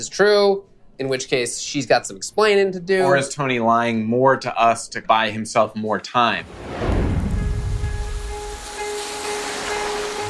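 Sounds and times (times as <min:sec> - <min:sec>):
speech: 0:00.0 - 0:06.9
steady rain pouring with a low rumble: 0:06.4 - 0:10.2.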